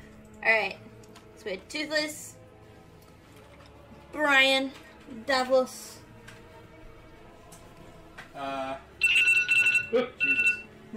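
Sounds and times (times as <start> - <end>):
speech: 0.4 - 2.4, 4.1 - 6.0, 8.4 - 8.9, 9.9 - 10.9
alarm ringing with a shrill warbling tone: 9.0 - 10.9.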